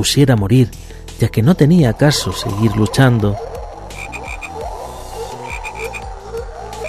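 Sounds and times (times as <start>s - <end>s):
speech: 0.0s - 3.5s
constant low throbbing drone: 1.5s - 6.8s
dense chorus of frogs croaking: 1.8s - 6.8s.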